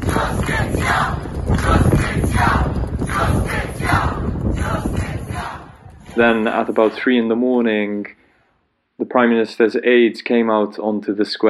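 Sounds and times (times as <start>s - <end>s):
large outdoor crowd shouting and roaring outside a building: 0.0s - 7.2s
speech: 6.2s - 8.2s, 9.0s - 11.4s.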